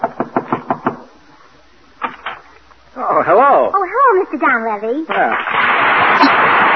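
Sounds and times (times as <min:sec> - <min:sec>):
sharp knocks on a door: 0:00.0 - 0:01.1
speech: 0:03.2 - 0:06.6.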